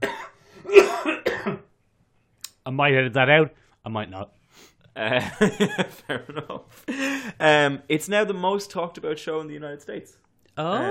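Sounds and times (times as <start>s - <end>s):
harsh coughs: 0.0s - 1.7s
speech: 2.6s - 10.8s
laughter: 5.0s - 7.4s.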